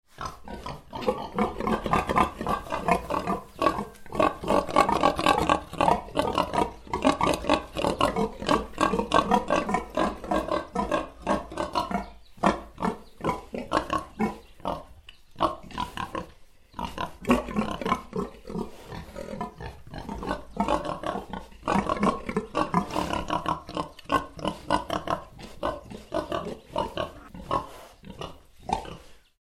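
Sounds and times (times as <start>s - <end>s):
pig squealing: 0.2s - 29.0s.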